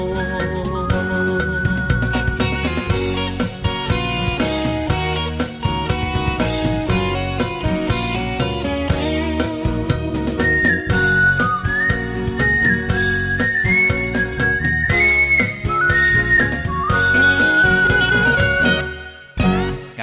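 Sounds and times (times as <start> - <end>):
high whistle-like melodic line: 0.0 - 3.4, 9.4 - 19.4
song with dense instrumental backing: 0.0 - 20.0.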